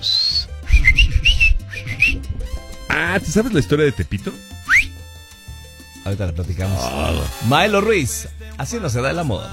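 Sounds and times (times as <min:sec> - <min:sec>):
people whistling to communicate: 0:00.0 - 0:02.3, 0:04.7 - 0:04.9
speech: 0:03.0 - 0:04.5, 0:06.1 - 0:09.5.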